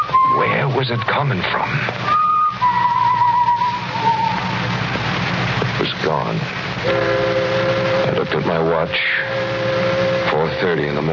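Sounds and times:
person whistling a tune in a building: 0:00.0 - 0:00.7, 0:02.1 - 0:04.4
hiss: 0:00.0 - 0:11.1
low hum: 0:00.0 - 0:11.1
speech: 0:00.8 - 0:02.2, 0:06.1 - 0:07.2, 0:08.5 - 0:09.8, 0:10.5 - 0:11.1.

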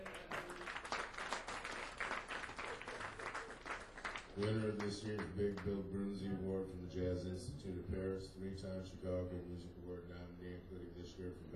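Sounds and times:
crowd applauding steadily: 0:00.0 - 0:04.9
speech: 0:04.4 - 0:11.5.

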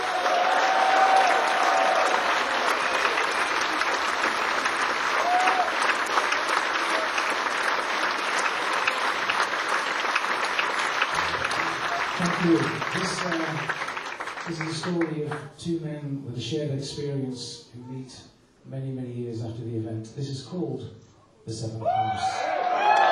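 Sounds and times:
faint whoops from the audience: 0:00.0 - 0:02.2, 0:05.2 - 0:05.9, 0:21.8 - 0:23.1
large audience applauding enthusiastically: 0:00.0 - 0:15.4
speech: 0:12.4 - 0:13.8, 0:14.5 - 0:22.4.

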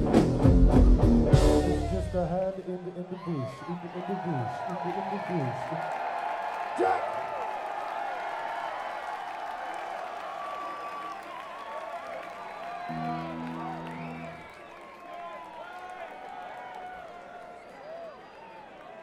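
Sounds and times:
large crowd cheering and applauding: 0:00.4 - 0:19.0
speech: 0:02.6 - 0:06.0, 0:06.8 - 0:07.2
low droning tone: 0:12.9 - 0:14.4.

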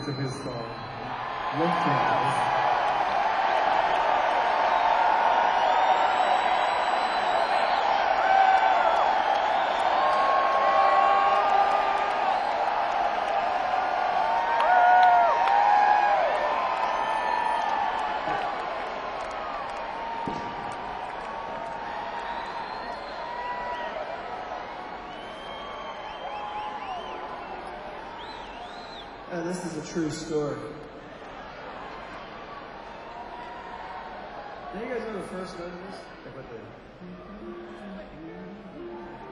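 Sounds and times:
speech: 0:00.0 - 0:00.9, 0:01.5 - 0:02.6
large live crowd yelling and cheering: 0:00.0 - 0:39.2.

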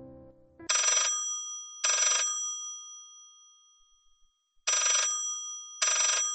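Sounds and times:
old-fashioned telephone bell ringing in short jangling bursts: 0:00.7 - 0:03.4, 0:04.7 - 0:06.3.

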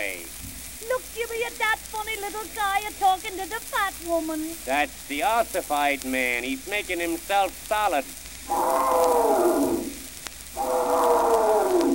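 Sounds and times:
speech: 0:01.6 - 0:09.5
little clown elephant trumpeting: 0:08.5 - 0:10.0, 0:10.6 - 0:11.9.

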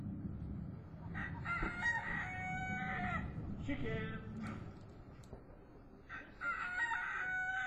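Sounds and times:
steady low outdoor rumble: 0:00.0 - 0:06.1
rooster crowing in a garden: 0:01.0 - 0:03.4, 0:06.1 - 0:07.6.

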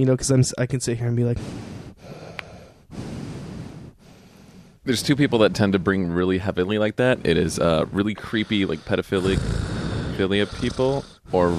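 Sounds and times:
speech: 0:00.0 - 0:01.8, 0:04.8 - 0:11.5
heavy breathy exhalations blown into a microphone: 0:01.3 - 0:06.0, 0:07.0 - 0:11.5.

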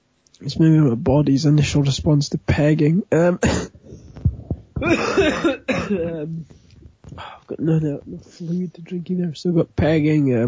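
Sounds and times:
speech: 0:00.4 - 0:04.0, 0:04.8 - 0:10.4
rasping coughing fits: 0:03.4 - 0:06.5
soft thuds: 0:03.9 - 0:08.2.

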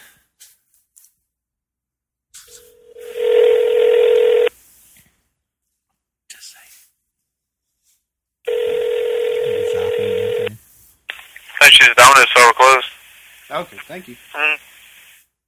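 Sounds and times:
cell phone electronic dialing tones while calling a pizza place: 0:02.9 - 0:04.5, 0:08.5 - 0:10.5
speech: 0:11.8 - 0:12.9, 0:13.5 - 0:14.7.

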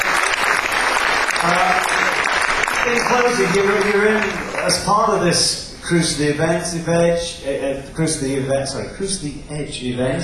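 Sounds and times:
audience applauding at a music cruise event: 0:00.0 - 0:05.2
speech: 0:01.4 - 0:01.7, 0:02.8 - 0:10.2.

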